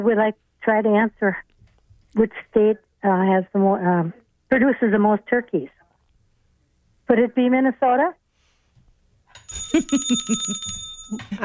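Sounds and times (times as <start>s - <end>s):
speech: 0.0s - 1.5s, 2.1s - 5.8s, 7.1s - 8.2s, 9.6s - 11.4s
bright metallic bell rung in a call-in trivia game: 9.4s - 11.4s.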